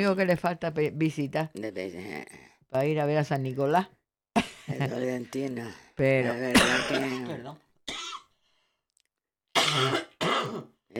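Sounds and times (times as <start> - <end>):
speech: 0.0 - 7.6, 9.7 - 10.9
person coughing harshly: 6.5 - 8.3, 9.6 - 10.8.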